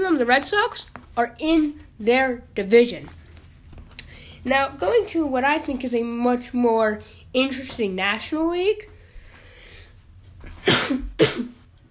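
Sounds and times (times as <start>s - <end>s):
speech: 0.0s - 3.2s, 4.4s - 8.9s
explosive sneezes: 10.5s - 11.6s.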